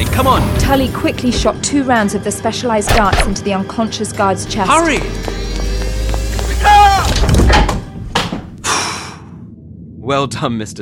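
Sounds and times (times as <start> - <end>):
speech: 0.0 - 5.6, 10.1 - 10.8
heavy door grinding open: 4.7 - 8.1.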